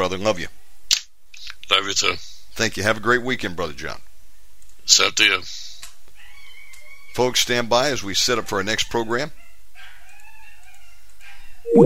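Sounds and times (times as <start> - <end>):
speech: 0.1 - 0.6, 1.7 - 4.1, 4.9 - 5.7, 7.2 - 9.4, 11.7 - 11.8
dog barking outside: 9.4 - 11.6
faint thin high tones: 11.7 - 11.8.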